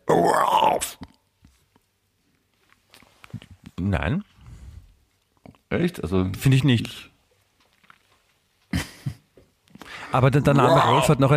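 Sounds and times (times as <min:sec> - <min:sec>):
person imitating retching: 0:00.0 - 0:01.2, 0:10.4 - 0:11.2
speech: 0:00.2 - 0:01.1, 0:03.8 - 0:04.3, 0:05.7 - 0:07.1, 0:10.1 - 0:11.3.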